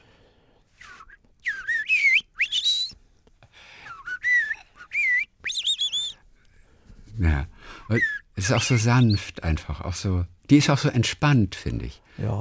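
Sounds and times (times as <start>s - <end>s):
person whistling an imitation of blackbird song: 0.8s - 3.0s, 3.8s - 6.2s, 7.9s - 9.3s
speech: 7.2s - 12.4s.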